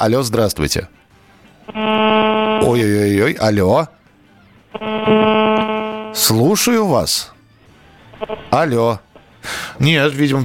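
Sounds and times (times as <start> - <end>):
speech: 0.0 - 1.0, 1.7 - 4.0, 4.7 - 7.4, 8.2 - 10.4
low hum: 4.8 - 6.2.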